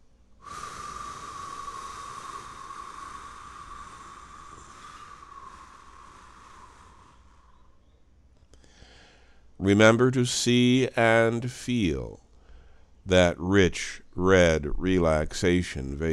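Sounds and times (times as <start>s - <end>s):
slow breath exhaled through the mouth: 0.4s - 7.9s
speech: 9.6s - 12.2s, 13.1s - 16.1s.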